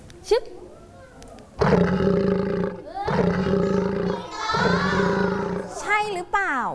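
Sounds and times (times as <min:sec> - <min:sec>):
speech: 0:00.3 - 0:00.6, 0:01.7 - 0:02.5
recorded lion roaring: 0:01.6 - 0:05.8.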